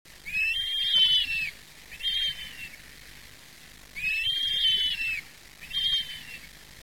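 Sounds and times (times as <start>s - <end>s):
bearded vulture call: 0.2s - 2.8s, 3.9s - 6.6s.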